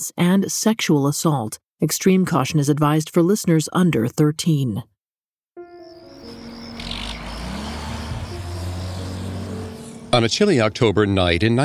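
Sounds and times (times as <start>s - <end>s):
speech: 0.0s - 4.9s, 10.2s - 11.6s
cement mixer truck engine rumbling: 5.9s - 11.6s.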